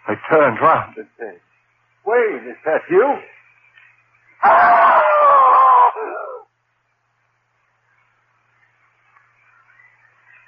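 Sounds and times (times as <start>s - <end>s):
speech: 0.1s - 3.4s, 4.4s - 5.1s
man screaming loudly in terror: 4.4s - 6.5s.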